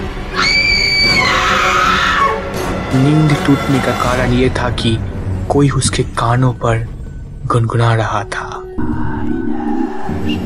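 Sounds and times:
woman screaming loudly on waking from sleep: 0.3 - 2.5
speech: 3.0 - 9.4.

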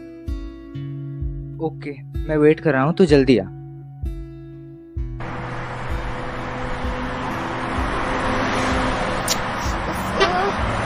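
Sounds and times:
speech: 1.6 - 3.6
heavy wind and road noise: 5.2 - 10.8
low car engine hum: 5.2 - 10.8.

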